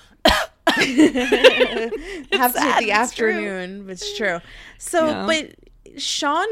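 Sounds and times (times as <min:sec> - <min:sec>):
person coughing with a throaty rasp: 0:00.2 - 0:01.0
laughter: 0:00.8 - 0:03.4
speech: 0:00.8 - 0:06.5.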